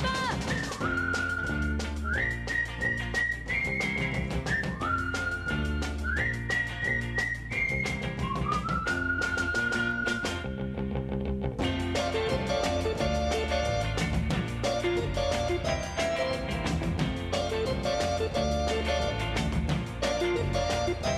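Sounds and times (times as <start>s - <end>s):
bouncy band accompaniment with bass and percussion: 0.0s - 10.5s, 11.6s - 21.1s
whistled greeting call: 0.4s - 10.5s.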